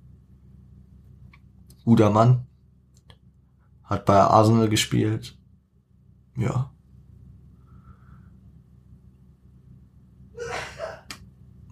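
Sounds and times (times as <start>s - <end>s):
steady low rumble: 0.0s - 10.4s
speech: 1.8s - 2.5s, 3.9s - 5.4s, 6.4s - 6.7s
sneeze: 10.4s - 11.2s.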